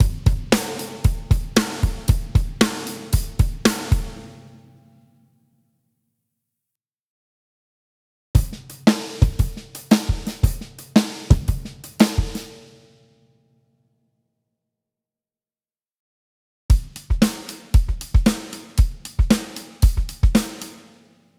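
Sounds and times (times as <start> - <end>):
drums: 0.0 - 4.7, 8.4 - 12.9, 16.7 - 21.2.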